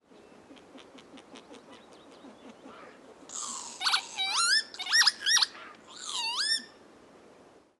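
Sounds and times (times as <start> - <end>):
northern lapwing at Ytterneset: 0.6 - 6.8.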